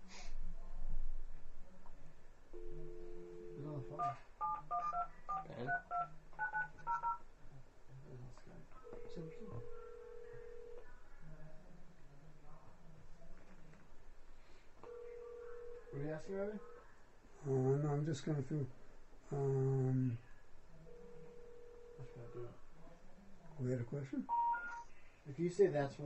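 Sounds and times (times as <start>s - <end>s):
telephone tone: 2.6s - 7.2s, 8.8s - 10.8s, 14.8s - 16.2s
touch-tone dialing beeps: 2.6s - 7.2s, 24.3s - 24.9s
speech: 3.8s - 4.8s, 5.5s - 6.2s, 16.0s - 16.7s, 17.4s - 20.3s, 22.0s - 22.6s, 23.6s - 24.4s, 25.2s - 26.0s.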